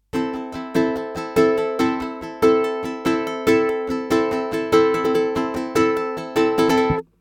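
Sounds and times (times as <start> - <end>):
Spanish-style ukulele: 0.0 - 7.1.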